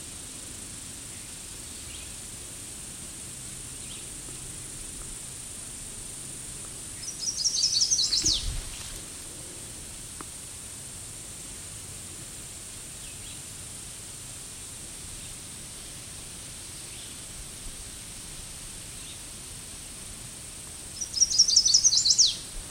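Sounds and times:
steady hiss: 0.0s - 22.6s
bird calling loudly from a tree: 7.0s - 8.6s, 21.0s - 22.4s.

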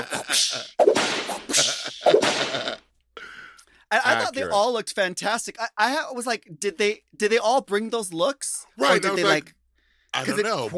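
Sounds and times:
speech: 0.0s - 0.8s, 3.9s - 10.7s
whip cracks: 0.3s - 2.6s.

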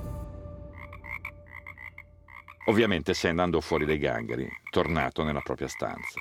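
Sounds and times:
frogs croaking in a chorus: 0.8s - 6.2s
speech: 2.7s - 6.2s.

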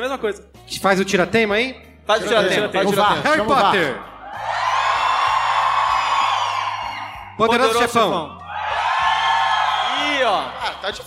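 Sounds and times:
speech: 0.0s - 4.1s, 7.4s - 8.4s, 10.2s - 11.0s
audience shouting and cheering: 4.1s - 11.0s.

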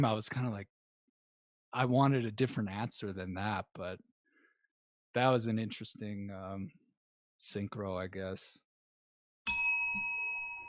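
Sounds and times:
speech: 0.0s - 0.8s, 1.7s - 4.1s, 5.1s - 6.8s, 7.4s - 8.6s
single bright bell ding: 9.5s - 10.6s.

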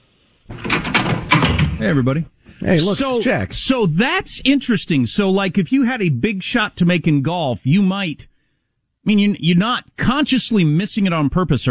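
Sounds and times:
door sliding open with a rumbling slide: 0.5s - 1.9s
speech: 1.8s - 8.3s, 9.0s - 11.6s.

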